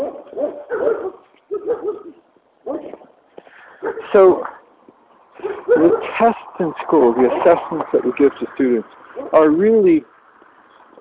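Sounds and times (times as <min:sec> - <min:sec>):
dog barking behind a fence: 0:00.0 - 0:03.1, 0:03.8 - 0:04.2, 0:05.4 - 0:06.4
speech: 0:04.1 - 0:04.5, 0:06.2 - 0:10.1.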